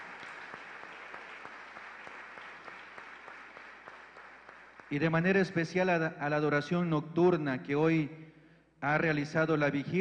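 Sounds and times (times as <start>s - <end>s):
crowd applauding in church: 0.0s - 5.1s
speech: 4.9s - 8.2s, 8.8s - 9.9s.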